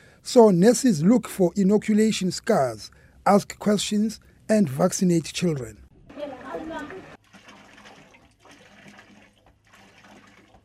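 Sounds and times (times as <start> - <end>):
speech: 0.2 - 5.8
water gushing and splashing from a borehole hand pump: 6.1 - 10.6.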